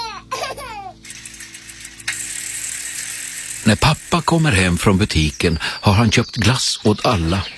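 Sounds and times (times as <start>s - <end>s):
baby crying in wavering wails: 0.0s - 1.0s
faint rattling: 0.4s - 5.5s
steady hiss: 1.0s - 6.0s
speech: 3.7s - 7.5s.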